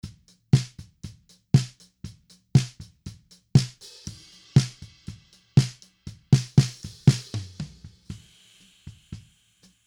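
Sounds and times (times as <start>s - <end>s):
dry snare drum top: 0.0s - 9.8s.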